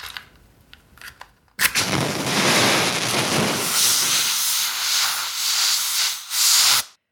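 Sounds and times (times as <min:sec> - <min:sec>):
steam hissing as a fire is extinguished: 0:01.8 - 0:07.0.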